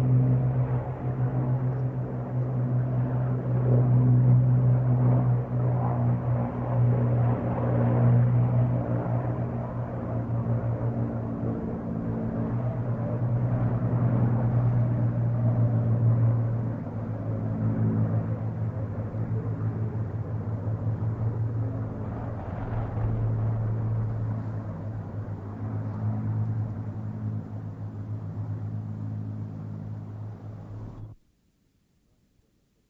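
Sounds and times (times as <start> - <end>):
piston-engined vintage warplanes flying over an airshow: 0.0 - 31.2.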